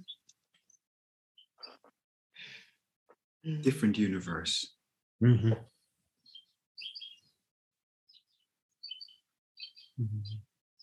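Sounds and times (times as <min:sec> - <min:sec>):
bird chirping: 0:00.0 - 0:00.8, 0:01.4 - 0:02.0, 0:05.4 - 0:07.4, 0:08.1 - 0:10.8
speech: 0:03.4 - 0:05.7
brief human vocal sound: 0:05.2 - 0:05.7, 0:10.0 - 0:10.4.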